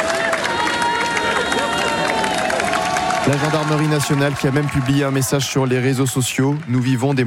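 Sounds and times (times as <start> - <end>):
young people shouting in the street: 0.0 - 4.4
large outdoor crowd of young people applauding and cheering in the street: 0.0 - 7.2
speech: 3.3 - 7.2.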